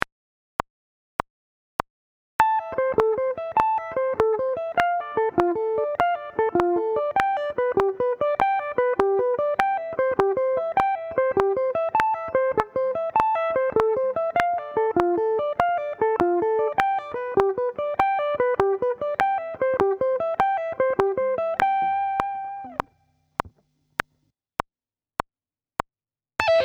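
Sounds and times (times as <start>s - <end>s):
guitar sweep picking: 2.4s - 22.9s, 26.4s - 26.6s.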